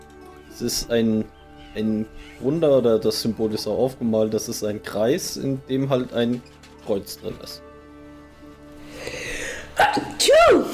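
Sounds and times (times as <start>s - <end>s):
speech: 0.6s - 7.7s, 9.8s - 10.7s
person sneezing: 9.8s - 10.2s.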